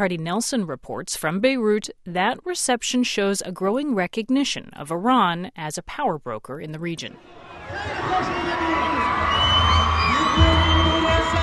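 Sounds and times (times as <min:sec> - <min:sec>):
speech: 0:00.0 - 0:08.7
large crowd screaming and cheering: 0:07.2 - 0:11.4
shrill whoops: 0:07.6 - 0:11.4.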